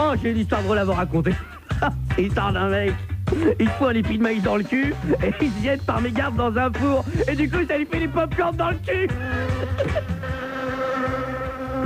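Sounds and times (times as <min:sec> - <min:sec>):
speech: 0:00.1 - 0:10.0
laughter: 0:01.2 - 0:02.1, 0:03.3 - 0:03.8, 0:04.6 - 0:05.8, 0:06.8 - 0:11.8
fly buzzing: 0:09.1 - 0:11.8.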